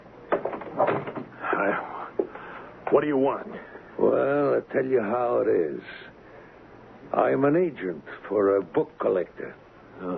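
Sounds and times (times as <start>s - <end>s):
door creaking: 0.3s - 1.7s
speech: 2.9s - 6.1s, 7.1s - 10.1s.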